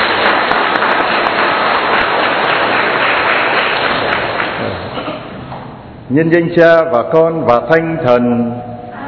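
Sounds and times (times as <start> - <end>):
audience applauding warmly: 0.0 - 4.9
speech: 6.1 - 8.7.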